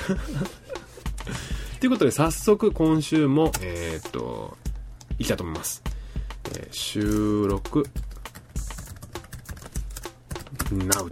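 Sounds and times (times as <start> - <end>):
laughter: 0.0 - 1.4
speech: 0.1 - 5.9, 6.5 - 8.1, 10.7 - 11.1
typing on a computer keyboard: 6.5 - 11.1.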